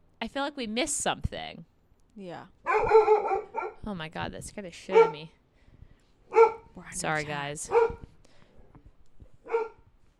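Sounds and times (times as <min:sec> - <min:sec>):
speech: 0:00.4 - 0:05.4, 0:06.8 - 0:08.0
dog barking: 0:02.6 - 0:03.8, 0:04.9 - 0:05.3, 0:06.3 - 0:06.7, 0:07.7 - 0:08.1, 0:09.4 - 0:09.8.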